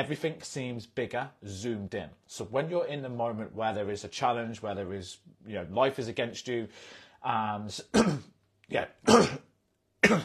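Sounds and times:
speech: 0.0 - 10.2
person clearing throat: 7.9 - 8.3, 9.0 - 10.2.

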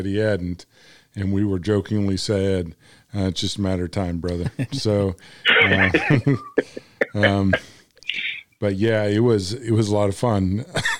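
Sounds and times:
speech: 0.0 - 10.9
laughter: 4.3 - 7.6
person clearing throat from cigar smoke: 5.5 - 7.7
person coughing from cigar smoke: 5.5 - 7.7.

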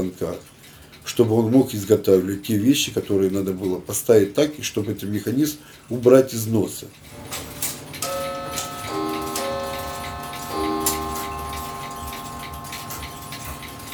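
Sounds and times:
speech: 0.0 - 7.5
mechanical clock ticking: 7.2 - 13.9
ringing chime-like tones: 8.0 - 13.9.

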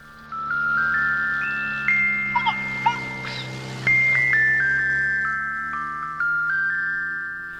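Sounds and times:
ice cream truck jingle: 0.0 - 7.5.

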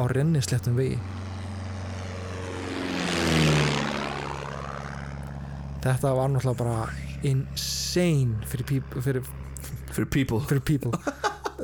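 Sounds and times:
speech: 0.0 - 1.3, 5.8 - 9.4, 10.0 - 11.6
propeller airplane flying by with buzzing engine drone: 0.0 - 11.6
laughter: 10.8 - 11.6.

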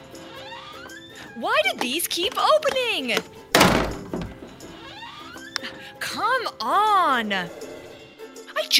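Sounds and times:
door creaking: 0.2 - 5.8
speech: 1.4 - 3.4, 6.0 - 7.7
door shutting with a heavy dull thunk: 3.5 - 4.6.

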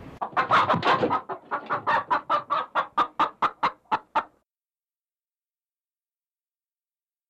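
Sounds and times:
chickens clucking: 0.0 - 4.4.

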